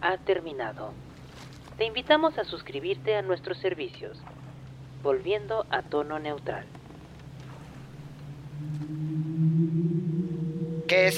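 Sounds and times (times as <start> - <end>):
speech: 0.0 - 1.1, 1.8 - 4.4, 5.0 - 6.8, 10.9 - 11.1
low drawn-out whale moan: 7.7 - 11.1.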